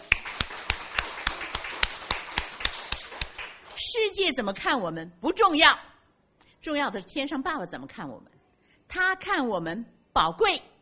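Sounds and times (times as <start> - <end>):
crowd clapping hands in steady unison: 0.0 - 3.9
speech: 4.1 - 5.9, 6.6 - 10.7.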